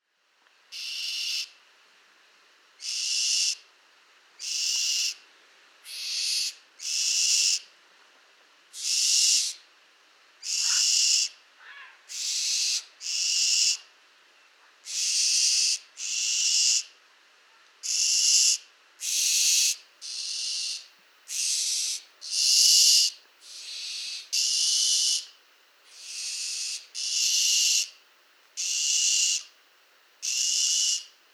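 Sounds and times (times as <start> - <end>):
barn owl: 0.7 - 1.6, 2.8 - 3.6, 4.4 - 5.2, 5.8 - 7.7, 8.7 - 9.6, 10.4 - 13.9, 14.8 - 28.0, 28.6 - 29.6, 30.2 - 31.2.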